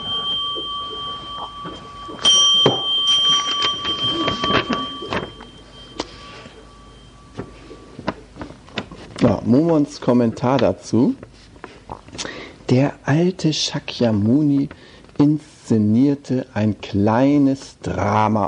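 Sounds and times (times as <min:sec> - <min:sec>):
bell struck once: 0:00.0 - 0:08.3
speech: 0:09.5 - 0:11.3, 0:12.7 - 0:18.4.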